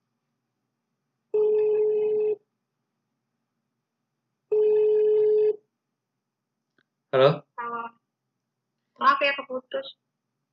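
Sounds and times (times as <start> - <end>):
telephone ringback tone: 1.4 - 2.4, 4.5 - 5.6
speech: 7.1 - 7.4, 9.7 - 10.1.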